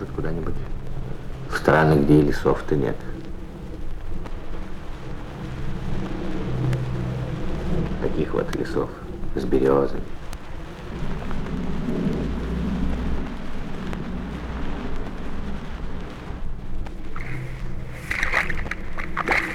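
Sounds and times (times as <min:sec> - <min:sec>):
steady low rumble: 0:00.0 - 0:19.5
speech: 0:00.2 - 0:00.7, 0:01.6 - 0:03.1, 0:08.0 - 0:10.2
bare feet splashing through a shallow grassy forest puddle after rain: 0:17.2 - 0:19.5.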